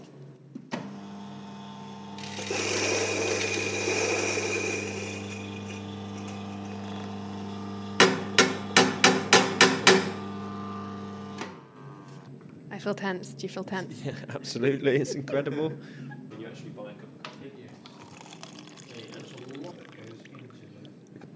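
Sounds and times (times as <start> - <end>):
electric coffee grinder grinding beans: 1.0 - 11.4, 17.9 - 19.8
speech: 12.8 - 16.1.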